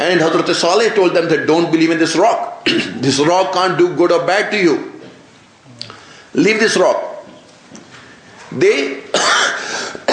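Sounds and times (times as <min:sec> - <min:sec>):
speech: 0:00.0 - 0:04.9, 0:06.3 - 0:07.0, 0:08.5 - 0:09.1
person coughing: 0:02.6 - 0:03.1, 0:09.1 - 0:10.1
person clearing throat: 0:02.6 - 0:03.2, 0:09.1 - 0:10.1.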